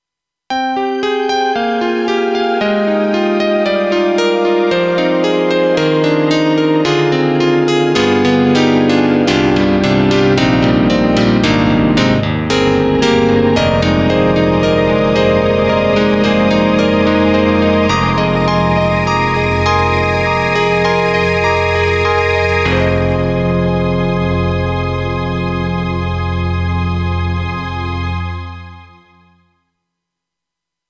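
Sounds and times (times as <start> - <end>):
KORG M3 piezo piano: 0.5 - 29.5
KORG M3 synth pad: 8.0 - 28.8.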